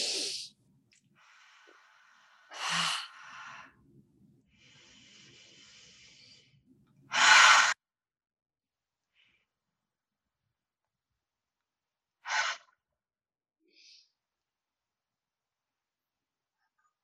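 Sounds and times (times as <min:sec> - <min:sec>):
deep breaths in through nose and out through mouth: 0:01.2 - 0:07.8.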